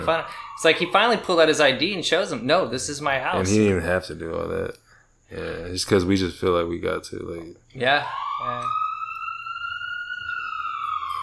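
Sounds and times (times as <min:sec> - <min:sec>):
police car siren wailing outside: 0:00.0 - 0:01.8, 0:07.8 - 0:11.2
speech: 0:00.0 - 0:08.8.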